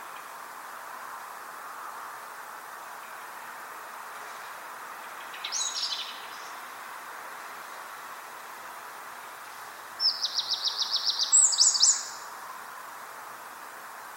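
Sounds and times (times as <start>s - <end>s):
steady hiss: 0.0s - 14.1s
Eurasian wren Troglodytes troglodytes singing: 5.0s - 6.7s, 10.0s - 12.3s.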